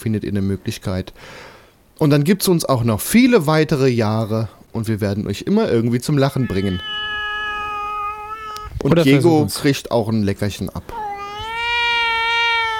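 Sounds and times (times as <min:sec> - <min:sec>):
speech: 0:00.0 - 0:07.0, 0:08.8 - 0:11.0
cat meowing: 0:06.3 - 0:09.2, 0:10.9 - 0:12.7.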